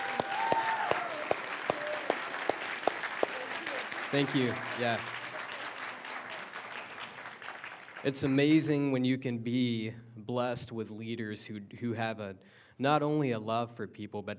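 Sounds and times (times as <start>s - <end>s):
audience clapping: 0.0s - 8.4s
speech: 4.1s - 5.2s, 8.0s - 14.3s.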